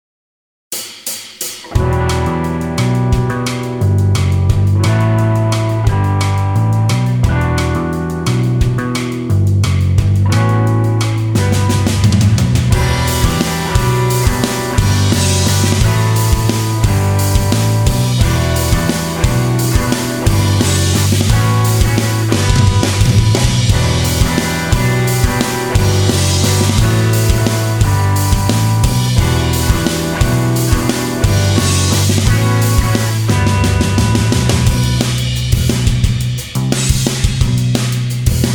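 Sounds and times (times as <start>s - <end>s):
math rock guitar: 1.6s - 38.5s.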